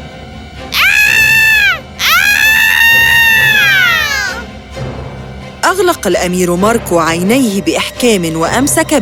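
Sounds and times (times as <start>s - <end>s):
screaming sound effect with cat-like wailing: 0.7s - 4.4s
speech: 5.7s - 9.0s.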